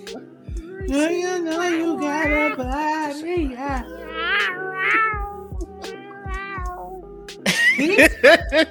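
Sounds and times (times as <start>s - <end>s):
speech: 0.1s - 5.1s, 7.8s - 8.6s
cat meowing: 1.6s - 2.7s, 3.8s - 7.0s.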